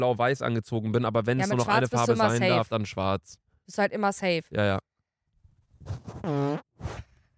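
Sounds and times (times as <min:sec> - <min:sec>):
speech: 0:00.0 - 0:04.9, 0:05.8 - 0:07.1
loud fart into the microphone: 0:05.9 - 0:07.1.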